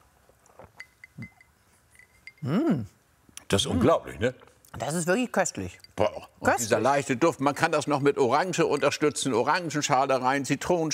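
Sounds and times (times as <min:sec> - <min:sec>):
glasses clinking in a toast: 0:00.7 - 0:02.6, 0:05.6 - 0:10.6
speech: 0:02.4 - 0:10.9.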